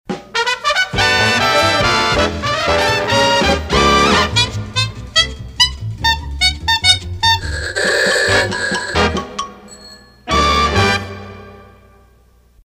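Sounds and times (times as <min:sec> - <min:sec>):
antique horns: 0:00.3 - 0:09.4.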